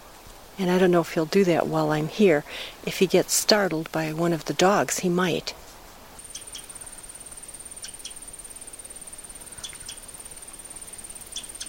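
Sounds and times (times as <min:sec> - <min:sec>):
speech: 0:00.6 - 0:05.6
winter wren chip calls in a wetland area: 0:06.2 - 0:11.6.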